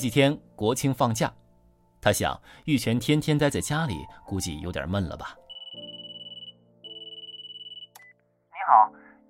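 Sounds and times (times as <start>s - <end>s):
speech: 0.0s - 1.4s, 2.0s - 5.9s
telephone ringing with bright electronic warble: 5.5s - 8.0s.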